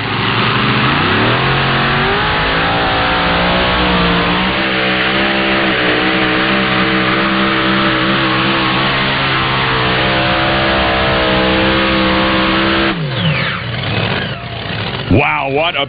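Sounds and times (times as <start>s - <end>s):
twin-Hemi pulling tractor engines revving: 0.0s - 15.2s
speech: 15.2s - 15.8s.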